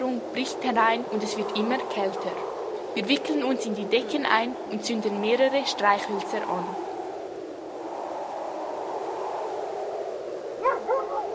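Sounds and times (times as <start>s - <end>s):
steady windy hiss: 0.0s - 11.3s
speech: 0.4s - 6.9s
St. Bernard dog barking: 10.6s - 11.3s.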